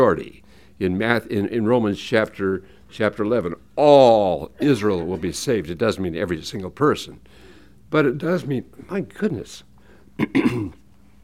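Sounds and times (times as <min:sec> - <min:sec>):
speech: 0:00.0 - 0:10.8
person clearing throat: 0:10.2 - 0:10.9.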